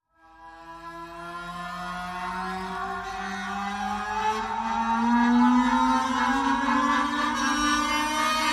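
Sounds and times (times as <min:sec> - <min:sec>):
dramatic strings rising: 0:03.2 - 0:08.4.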